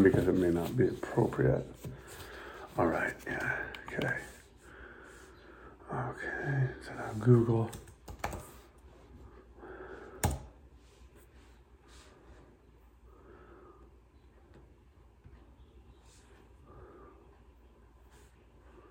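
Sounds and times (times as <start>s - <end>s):
speech: 0.0s - 1.9s, 2.8s - 4.3s, 5.9s - 7.8s
typing on a computer keyboard: 7.7s - 8.6s.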